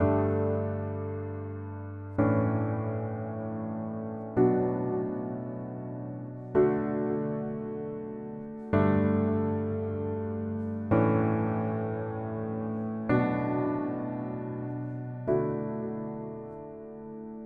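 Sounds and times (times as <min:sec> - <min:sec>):
epic pop piano in B minor: 0:00.0 - 0:17.4.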